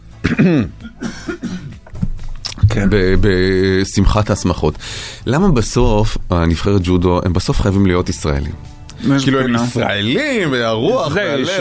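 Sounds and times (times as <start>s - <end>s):
harsh cough: 0.2s - 1.9s
rough raspy throat sounds: 0.2s - 2.8s
speech: 0.4s - 0.8s, 2.8s - 11.5s
short breathy hiss: 4.7s - 5.4s.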